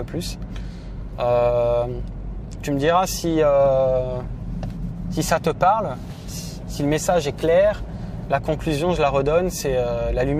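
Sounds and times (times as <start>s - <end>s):
speech: 0.0s - 4.4s, 5.1s - 10.3s
car interior rumble while driving: 0.0s - 10.3s.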